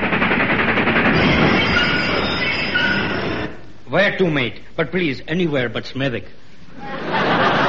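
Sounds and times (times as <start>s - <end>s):
train wheels clattering over the tracks: 0.0s - 3.6s
speech: 4.0s - 7.0s
laughter: 6.7s - 7.6s.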